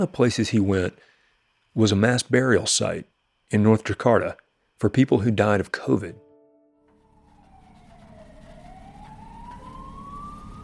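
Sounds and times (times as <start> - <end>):
speech: 0.0 - 1.1, 1.8 - 6.2
siren wailing at a burial site: 6.2 - 10.6.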